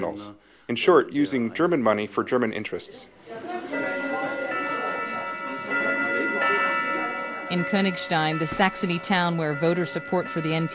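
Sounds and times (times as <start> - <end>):
speech: 0.0 - 3.7, 7.5 - 10.7
soft murmur of room noise: 0.0 - 10.7
wooden wall clock chiming the hour in a restaurant: 3.7 - 10.7.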